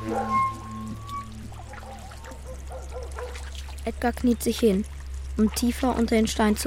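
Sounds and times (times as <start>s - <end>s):
brief tonal notes: 0.0s - 1.9s
water flowing in a stream: 0.0s - 6.6s
speech: 0.1s - 0.4s, 3.9s - 6.6s.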